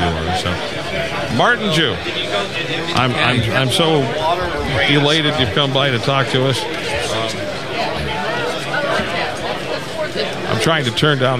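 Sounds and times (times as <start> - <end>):
crowd chatter: 0.0 - 11.3
speech: 1.3 - 7.2, 10.2 - 11.3.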